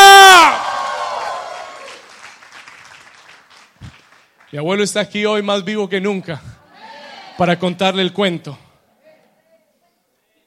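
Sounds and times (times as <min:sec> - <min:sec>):
one strong voice shouting a victory shout: 0:00.0 - 0:00.6
audience cheering and whooping: 0:00.0 - 0:02.1
speech: 0:04.5 - 0:06.5, 0:07.4 - 0:08.6.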